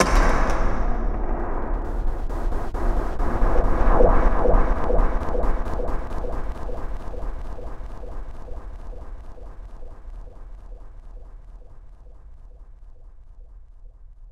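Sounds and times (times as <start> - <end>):
cinematic metal impacts: 0.0 - 7.0.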